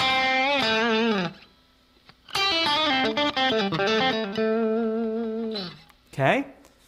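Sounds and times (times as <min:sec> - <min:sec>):
dry electric guitar with no reverb or delay: 0:00.0 - 0:06.1
speech: 0:03.5 - 0:04.4, 0:06.2 - 0:06.6.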